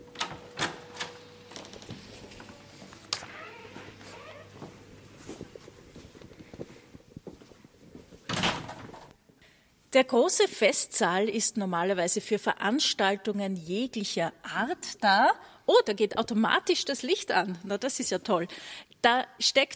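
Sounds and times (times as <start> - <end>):
large heavy door clunks: 8.3 - 9.1
speech: 10.0 - 19.7.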